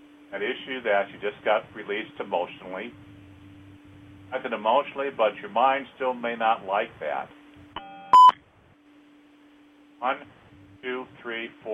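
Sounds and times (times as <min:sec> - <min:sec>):
low hum: 0:00.0 - 0:11.7
speech: 0:00.3 - 0:03.1, 0:04.3 - 0:07.4, 0:10.0 - 0:11.7
short electronic beep of a caller joining the line: 0:07.8 - 0:08.4.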